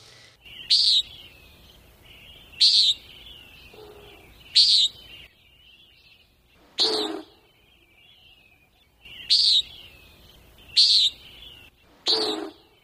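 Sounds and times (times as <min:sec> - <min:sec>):
common nighthawk calling: 0:00.4 - 0:01.5, 0:02.2 - 0:05.3, 0:06.7 - 0:07.5, 0:09.1 - 0:12.8.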